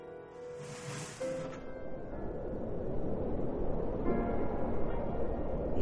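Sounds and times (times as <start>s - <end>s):
heavy door creaking scrape: 0.5s - 1.6s
low hollow rush of cold air: 0.6s - 5.8s.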